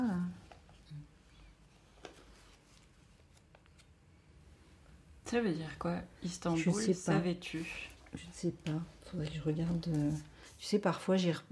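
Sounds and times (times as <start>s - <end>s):
paper scraps rustling: 1.6s - 4.0s, 8.7s - 10.7s
speech: 5.3s - 11.5s.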